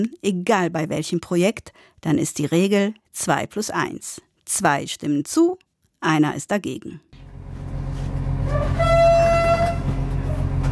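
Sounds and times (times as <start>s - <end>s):
speech: 0.0s - 7.1s
low express train engine rumble: 7.2s - 10.6s
express train horn departing Vilnius main station in Lithuania: 8.3s - 10.6s.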